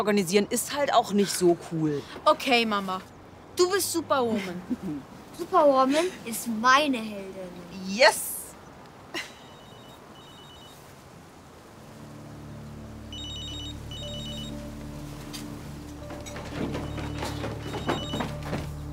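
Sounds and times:
speech: 0:00.0 - 0:08.3
telephone ringing in short electronic trills: 0:09.4 - 0:10.8, 0:13.1 - 0:14.7, 0:16.5 - 0:18.6
low droning background: 0:11.5 - 0:18.9
knocks and thumps: 0:15.8 - 0:18.9.

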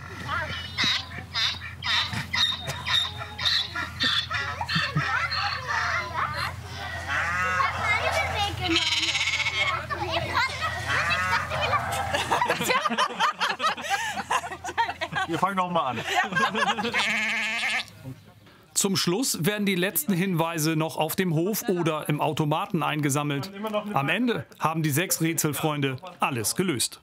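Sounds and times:
donkey braying: 0:00.0 - 0:12.3, 0:16.8 - 0:17.9
laughter: 0:02.6 - 0:17.6
sheep bleating: 0:08.6 - 0:09.9, 0:16.8 - 0:17.9
cow mooing: 0:08.7 - 0:09.8, 0:17.0 - 0:17.9
speech: 0:15.5 - 0:17.4, 0:18.8 - 0:27.0.

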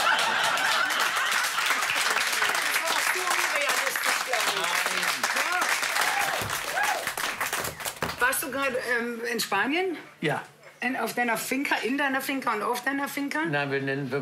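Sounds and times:
scattered laughter: 0:00.0 - 0:01.8
sustained audience applause: 0:00.0 - 0:08.3
speech: 0:08.7 - 0:14.1.

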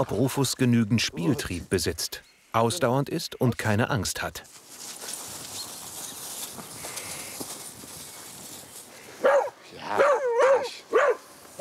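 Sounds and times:
speech: 0:00.0 - 0:04.6
scuffling and rustling movement: 0:04.4 - 0:09.5
dog barking during play: 0:09.2 - 0:11.5.

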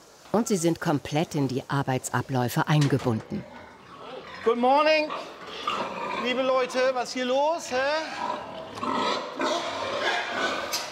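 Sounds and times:
speech: 0:00.3 - 0:03.6, 0:04.4 - 0:09.0
herd of young sows grunting and squealing at feeding time: 0:03.3 - 0:10.9.

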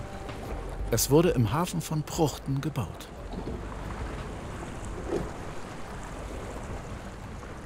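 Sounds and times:
water and wind rushing around a boat at sea: 0:00.0 - 0:07.6
speech: 0:00.9 - 0:03.8.

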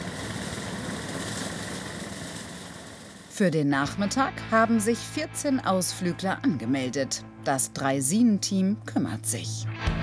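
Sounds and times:
small engine of a homemade lawnmower cutting grass: 0:00.0 - 0:03.3
speech: 0:03.4 - 0:09.9.

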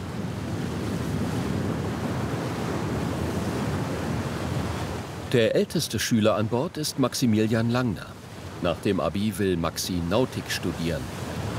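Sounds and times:
strong wind roaring over the sea around a ship: 0:00.0 - 0:05.4, 0:11.0 - 0:11.5
sea waves crashing around a ship at sea: 0:00.0 - 0:11.5
speech: 0:05.3 - 0:11.2.

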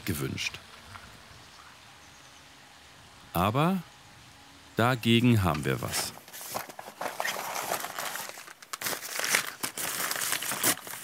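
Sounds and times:
speech: 0:00.1 - 0:00.7, 0:03.4 - 0:03.9, 0:04.8 - 0:06.2
chocolate wrapper crinkling as it is unpacked: 0:06.0 - 0:11.0.

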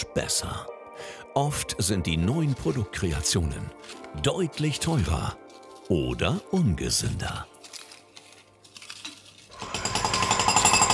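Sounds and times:
speech: 0:00.0 - 0:07.5
construction site rattling hammering like a jackhammer: 0:09.5 - 0:10.9.

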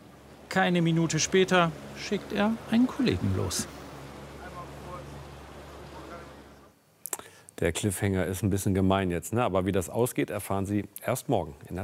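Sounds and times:
motorboat engine droning: 0:00.0 - 0:06.8
rushing water: 0:00.0 - 0:06.8
speech: 0:00.5 - 0:03.8, 0:07.6 - 0:11.8.

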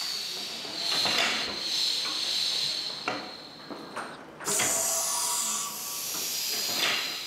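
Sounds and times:
steam hissing from a press shaping Panama hats in Ecuador: 0:00.0 - 0:07.2.

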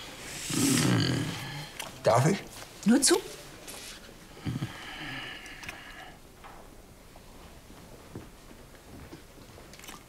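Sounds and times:
faint room noise: 0:00.0 - 0:10.0
speech: 0:02.0 - 0:03.4
crunching and chewing of food: 0:09.0 - 0:10.0.

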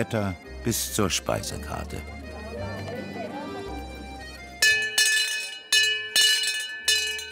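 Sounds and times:
speech: 0:00.0 - 0:02.2
low murmuring sound: 0:01.0 - 0:04.6
town crier's hand bell ringing: 0:04.6 - 0:07.3.

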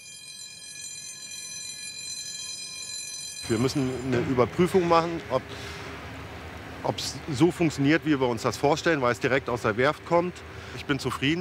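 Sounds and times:
repaired canal lock gate moving with mechanical whine: 0:00.0 - 0:11.3
low rumbling machine noise of a canal lock gate: 0:03.4 - 0:11.3
speech: 0:03.5 - 0:05.9, 0:06.8 - 0:11.3.

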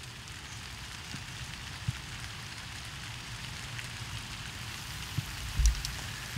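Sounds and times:
steady rain falling outdoors: 0:00.0 - 0:06.3.

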